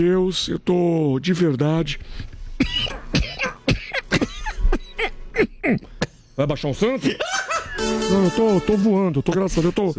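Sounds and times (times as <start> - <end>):
speech: 0.0 - 3.0, 5.6 - 9.9
short rough coughs: 2.6 - 6.3
laughter: 7.0 - 8.1.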